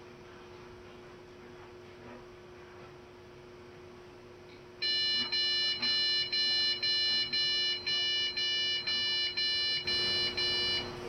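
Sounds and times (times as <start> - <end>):
beep code: 4.8 - 10.9.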